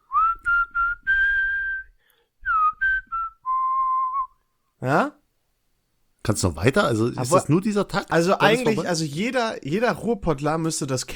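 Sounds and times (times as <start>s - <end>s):
person whistling a short tune: 0.0s - 4.4s
speech: 4.8s - 5.2s, 6.3s - 11.1s.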